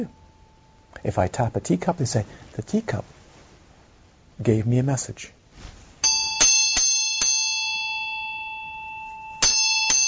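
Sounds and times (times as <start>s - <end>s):
speech: 1.0s - 3.2s, 4.4s - 5.4s
small bell being struck: 6.0s - 10.0s.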